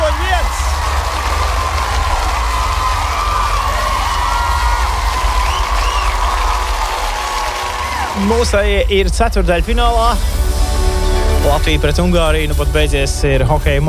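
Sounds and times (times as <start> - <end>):
crowd applause: 0.0 - 9.1
whoops and shouts: 1.4 - 8.3
speech: 8.2 - 10.4, 11.4 - 13.8.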